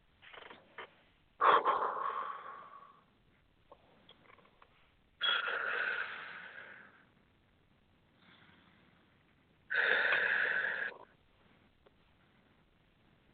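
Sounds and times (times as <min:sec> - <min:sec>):
slow deep breathing during a guided relaxation exercise: 0:01.4 - 0:03.1, 0:05.2 - 0:07.2, 0:08.2 - 0:09.1, 0:09.7 - 0:11.2.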